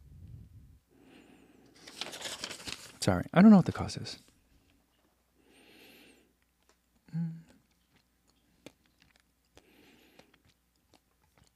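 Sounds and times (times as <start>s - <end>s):
speech: 3.1s - 4.3s
quiet chewing with crunching: 6.4s - 11.5s.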